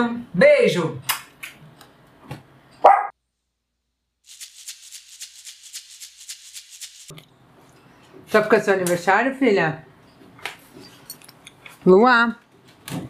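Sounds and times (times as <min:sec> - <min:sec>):
speech: 0:00.0 - 0:01.2, 0:08.3 - 0:09.9, 0:11.8 - 0:13.0
single sharp dog bark: 0:02.8 - 0:03.2
rapid rhythmic high-pitched rustling: 0:04.3 - 0:07.1.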